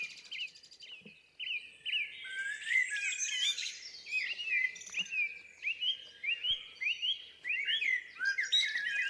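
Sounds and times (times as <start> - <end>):
blackbird singing in Scotland in the early morning: 0.0 - 9.0.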